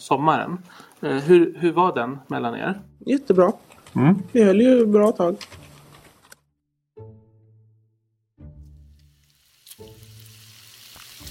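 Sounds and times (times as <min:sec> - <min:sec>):
speech: 0:00.0 - 0:05.6
pork sizzling in a frying pan: 0:08.9 - 0:11.2.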